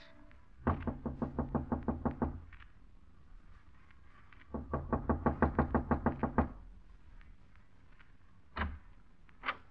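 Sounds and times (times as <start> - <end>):
knocking on an apartment door in a club: 0.6 - 2.5, 4.5 - 6.6.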